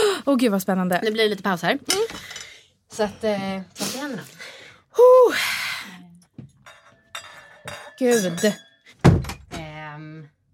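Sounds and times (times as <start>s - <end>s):
speech: 0.2s - 5.6s, 8.0s - 8.6s
wine glass clinking as it is set out for pouring wine: 6.4s - 9.0s.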